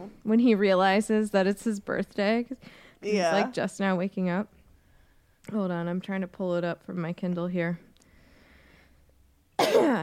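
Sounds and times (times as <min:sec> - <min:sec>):
speech: 0:00.1 - 0:04.6, 0:05.5 - 0:07.9
person coughing: 0:09.6 - 0:10.0.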